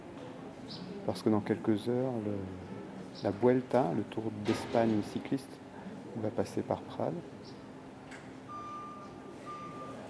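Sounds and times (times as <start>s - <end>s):
quiet outdoor street ambience in a car-free town centre: 0.0s - 10.0s
speech: 0.7s - 5.6s, 6.2s - 7.6s
electronic beeping tone: 8.5s - 10.0s.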